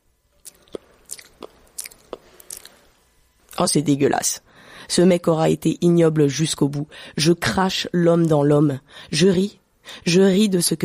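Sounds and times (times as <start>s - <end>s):
wet biting and chewing into flesh: 0.4s - 2.8s
speech: 3.6s - 10.8s.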